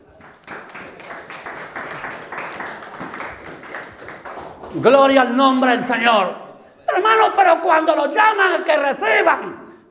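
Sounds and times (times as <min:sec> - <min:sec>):
audience applauding: 0:00.0 - 0:05.8
speech: 0:04.7 - 0:06.4, 0:07.0 - 0:09.6.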